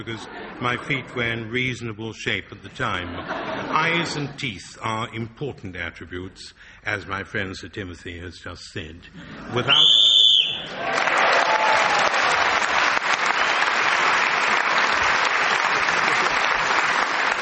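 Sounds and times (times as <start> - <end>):
laughter: 0.0 - 1.7, 2.6 - 4.6, 9.2 - 10.0, 15.5 - 17.3
speech: 0.0 - 10.0
loud shrill referee-style whistle blast: 9.7 - 10.7
sustained audience applause: 10.2 - 17.3.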